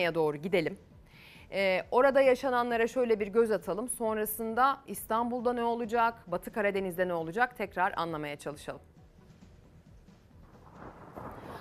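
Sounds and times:
speech: 0:00.0 - 0:00.9, 0:01.5 - 0:08.9
deep rumbling thunder in a morning thunderstorm in Mudanya, Bursa, Turkey: 0:10.6 - 0:11.5.

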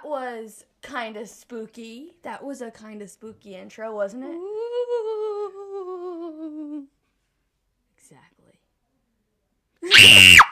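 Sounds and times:
speech: 0:00.1 - 0:05.4, 0:09.8 - 0:10.5
loud playful Halloween-style high-pitched scream: 0:09.8 - 0:10.5.

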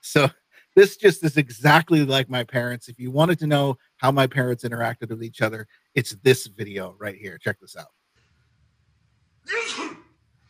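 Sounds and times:
speech: 0:00.1 - 0:08.0
person sneezing: 0:09.5 - 0:10.2.

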